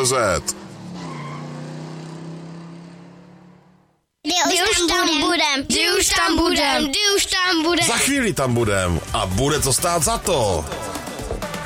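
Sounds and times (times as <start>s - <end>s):
speech: 0.0s - 0.7s, 5.0s - 11.0s
off-road vehicle engine roaring and revving at a muddy off-road event: 0.0s - 4.0s
burst of loud excited voices: 4.3s - 8.4s.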